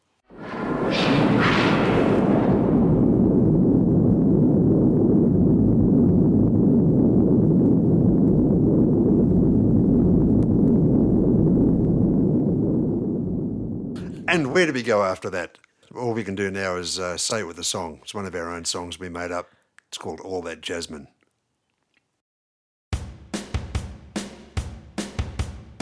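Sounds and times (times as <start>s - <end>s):
atomic bomb explosion: 0.3s - 14.7s
speech: 14.6s - 21.2s.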